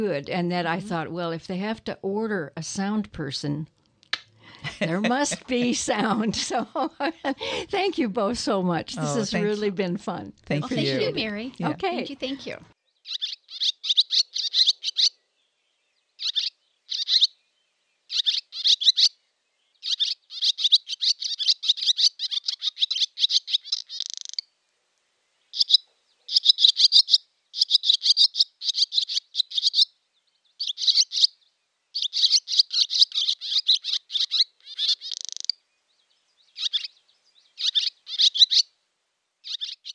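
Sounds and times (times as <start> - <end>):
speech: 0.0 - 3.8, 4.6 - 13.3
laughter: 4.5 - 7.8, 9.0 - 9.6, 10.6 - 12.6
swallow song in summer, rapid high twittering chirps: 13.0 - 15.2, 16.2 - 17.4, 18.1 - 19.2, 19.8 - 24.4, 25.5 - 29.9, 30.6 - 31.4, 32.0 - 35.6, 36.4 - 38.7, 39.4 - 39.9.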